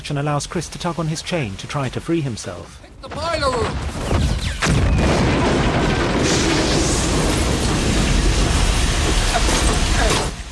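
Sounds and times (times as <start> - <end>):
speech: 0.1 - 4.2
heavy gunfire barrage from a nearby vessel: 3.1 - 10.4.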